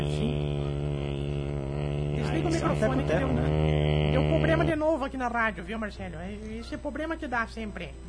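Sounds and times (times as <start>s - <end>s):
voice on a radio show imitating a distant airplane flying: 0.0s - 4.9s
speech: 2.4s - 8.0s.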